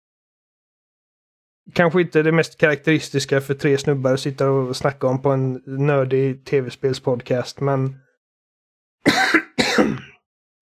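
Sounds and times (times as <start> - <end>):
speech: 1.7 - 8.0
harsh raspy coughs: 9.0 - 10.2.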